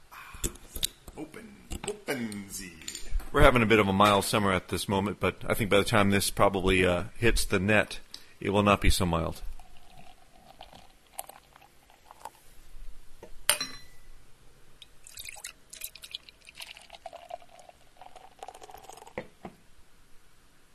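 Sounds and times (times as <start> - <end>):
speech: 2.1 - 9.5
vanilla extract being poured in a quiet trickle: 9.3 - 12.5, 14.8 - 19.4
light glassy clinks: 13.5 - 14.1.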